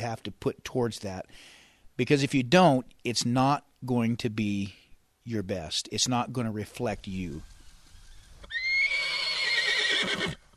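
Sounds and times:
speech: 0.0 - 7.5
six-year-old mare whinnying: 8.4 - 10.5.

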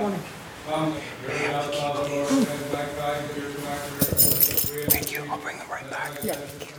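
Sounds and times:
speech: 0.7 - 6.7
bunch of keys to a church bell tower jangling inside a church: 3.6 - 5.2, 6.1 - 6.7.

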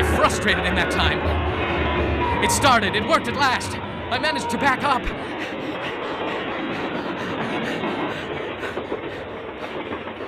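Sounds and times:
clickety-clack of train wheels on rails: 0.0 - 10.2
train passing: 0.0 - 10.2
speech: 0.4 - 1.4, 2.0 - 6.0.

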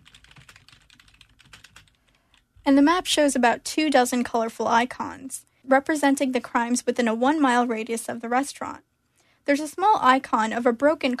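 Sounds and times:
typing an address on a computer keyboard: 0.0 - 2.6
speech: 2.6 - 11.1.

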